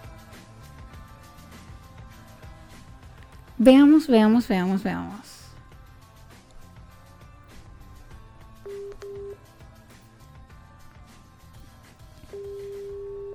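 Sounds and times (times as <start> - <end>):
speech: 3.6 - 5.3
long steady telephone ringing tone: 8.6 - 9.4, 12.3 - 13.3
short telephone line beeps as a call is placed: 12.3 - 13.3.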